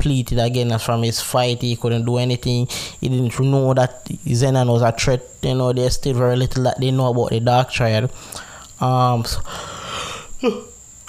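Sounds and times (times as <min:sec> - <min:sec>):
speech: 0:00.0 - 0:09.8, 0:10.4 - 0:10.7
person yawning: 0:09.9 - 0:10.8.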